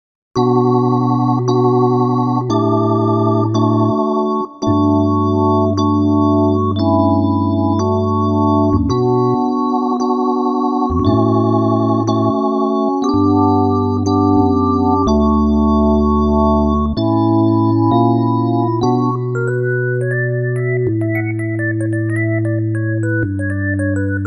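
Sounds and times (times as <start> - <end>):
draw organ: 0.4 - 24.2.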